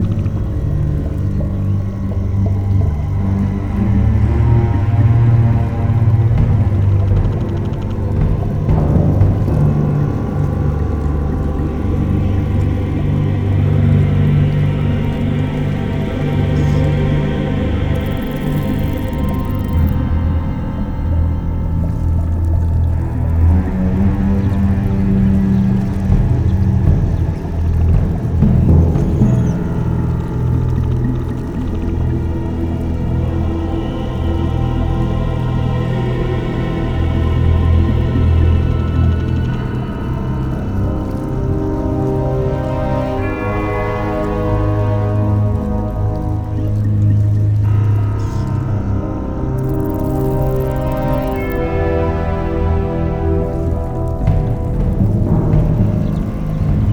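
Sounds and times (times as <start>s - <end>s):
swamp ambience: 0.0s - 56.9s.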